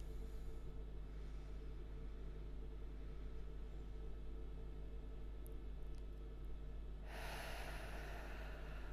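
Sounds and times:
steady low hum: 0.0s - 8.9s
deep diaphragmatic breathing during a relaxation exercise: 7.0s - 8.9s.

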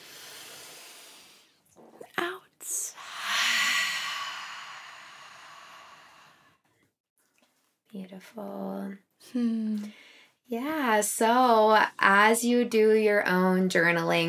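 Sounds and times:
deep breath inhaled during a guided breathing exercise: 0.0s - 1.6s, 3.0s - 6.6s
speech: 7.9s - 14.2s.

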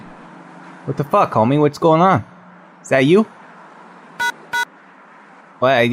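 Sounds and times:
speech: 0.8s - 3.4s, 5.6s - 5.9s
phone keypad tones during a call: 4.2s - 4.7s.

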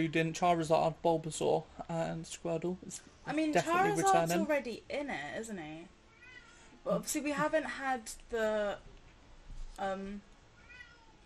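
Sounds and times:
speech: 0.0s - 6.0s, 6.8s - 8.9s, 9.8s - 10.3s
female cat meowing: 10.6s - 11.2s.

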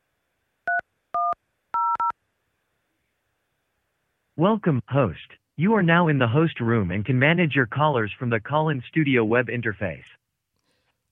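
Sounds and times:
DTMF keypad tones entering a PIN on a phone line: 0.7s - 2.1s
speech: 4.4s - 10.2s.

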